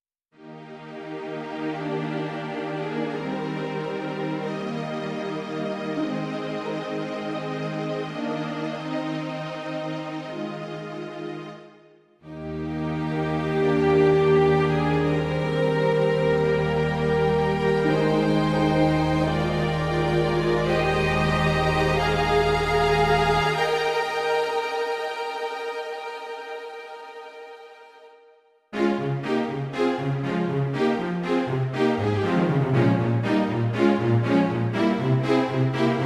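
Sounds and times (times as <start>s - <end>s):
Megavoice strings: 0.4s - 36.0s.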